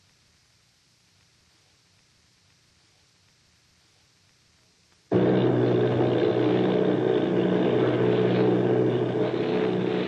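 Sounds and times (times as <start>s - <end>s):
propeller engines of army bomber planes droning: 5.1s - 10.0s.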